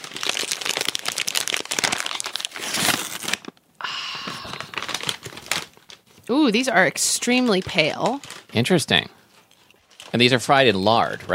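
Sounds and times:
laminated chip bag being torn open: 0.0s - 3.6s, 4.3s - 6.1s, 8.0s - 8.8s
laminated chip bag crinkling: 0.0s - 3.6s, 4.2s - 6.4s, 7.4s - 11.0s
speech: 6.3s - 9.2s, 10.1s - 11.3s.

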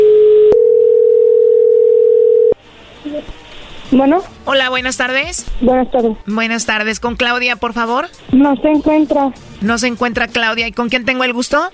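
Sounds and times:
telephone line tone on a call being placed: 0.0s - 2.6s
speech: 3.9s - 11.7s.

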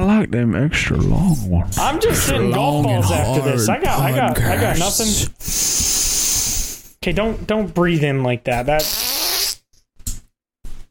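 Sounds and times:
speech: 0.2s - 5.8s, 7.0s - 9.0s
short sputtering farts: 8.8s - 9.6s.

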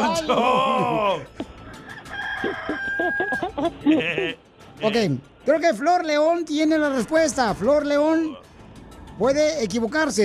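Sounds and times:
laughter: 0.0s - 1.4s, 2.4s - 4.4s
speech: 0.0s - 1.4s, 2.4s - 8.4s, 9.2s - 10.2s
rooster crowing: 1.6s - 3.6s.

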